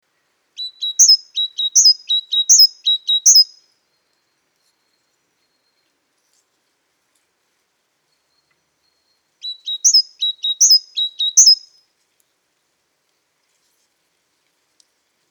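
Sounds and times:
Great tit Parus major singing: 0:00.6 - 0:03.6, 0:09.4 - 0:11.7.

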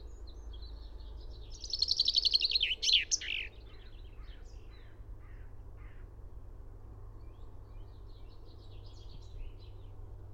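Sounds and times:
low background hum: 0:00.0 - 0:10.3
common chaffinch Fringilla coelebs singing: 0:01.4 - 0:03.6.

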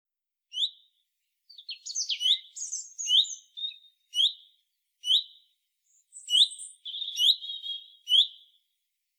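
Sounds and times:
Common chaffinch Fringilla coelebs calling: 0:01.5 - 0:05.4, 0:06.1 - 0:08.5.

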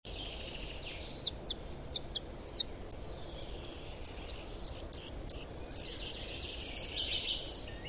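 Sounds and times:
soft background hiss: 0:00.1 - 0:07.8
Eurasian blackcap Sylvia atricapilla calling: 0:01.0 - 0:06.3.

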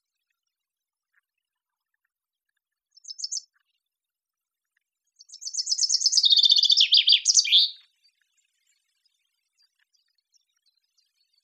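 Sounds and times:
common chaffinch Fringilla coelebs song: 0:02.9 - 0:03.5, 0:05.2 - 0:11.4.

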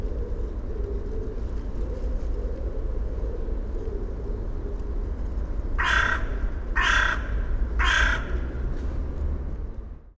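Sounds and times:
low background rumble: 0:00.0 - 0:10.1
Carrion crow cawing: 0:05.8 - 0:08.5.

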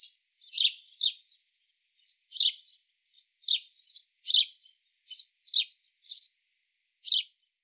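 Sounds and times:
house sparrow Passer domesticus cheeping: 0:00.0 - 0:01.2, 0:02.0 - 0:06.4, 0:07.0 - 0:07.3.

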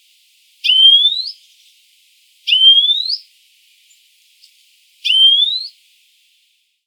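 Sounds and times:
European Greenfinch Chloris chloris giving long nasal rising whistles: 0:00.6 - 0:01.5, 0:02.5 - 0:03.3, 0:05.0 - 0:05.8.

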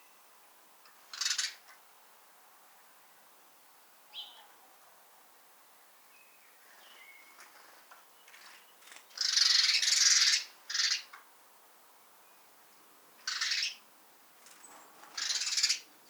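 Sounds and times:
house sparrow Passer domesticus chattering: 0:01.1 - 0:01.6, 0:09.1 - 0:11.1, 0:13.2 - 0:13.8, 0:15.2 - 0:16.0.

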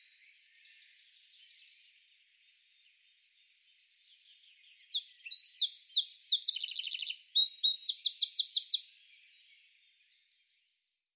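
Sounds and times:
Eurasian wren song with high sharp notes and trills: 0:00.0 - 0:10.4.

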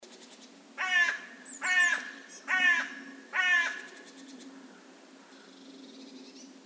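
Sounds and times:
carrion crow Corvus corone cawing: 0:00.8 - 0:05.5.

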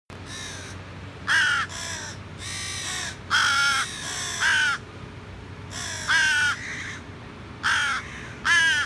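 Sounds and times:
carrion crow cawing: 0:00.3 - 0:04.8, 0:05.7 - 0:07.0, 0:07.6 - 0:08.8.

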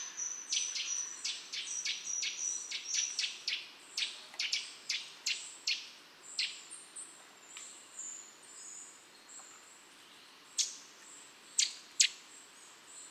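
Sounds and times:
Eurasian nuthatch Sitta europaea calling in short, sharp notes: 0:00.0 - 0:06.6.

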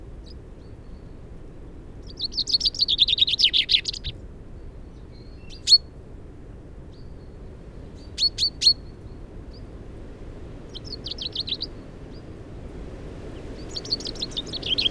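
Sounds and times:
common chaffinch rattling song, Fringilla coelebs: 0:02.0 - 0:05.9, 0:06.9 - 0:09.7, 0:10.7 - 0:12.3, 0:13.2 - 0:14.9
common chaffinch sharp call notes: 0:02.1 - 0:04.1, 0:10.7 - 0:11.8, 0:13.4 - 0:14.9.

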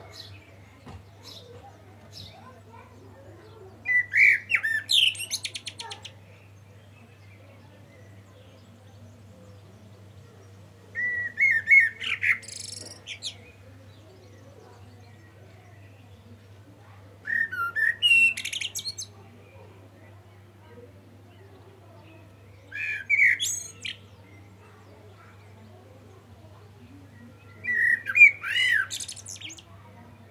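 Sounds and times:
common blackbird Turdus merula singing: 0:00.1 - 0:00.6, 0:01.2 - 0:16.6, 0:17.2 - 0:19.2, 0:22.4 - 0:25.6, 0:27.1 - 0:29.8.

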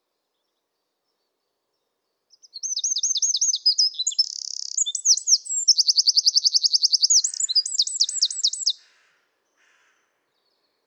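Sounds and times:
Eurasian wren Troglodytes troglodytes song with buzzy runs and trills: 0:02.3 - 0:08.8.

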